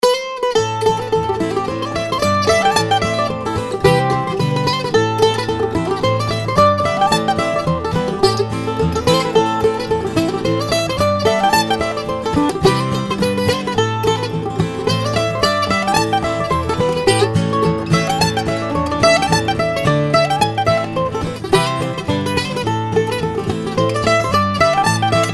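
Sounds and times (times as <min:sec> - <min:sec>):
celtic-bluegrass acoustic music: 0:00.0 - 0:25.3.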